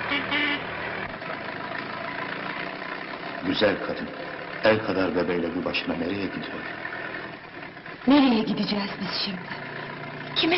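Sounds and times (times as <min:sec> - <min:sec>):
pickup truck engine rumbling as it drives off: 0:00.0 - 0:10.5
speech: 0:03.4 - 0:06.9, 0:08.0 - 0:09.6, 0:10.4 - 0:10.5.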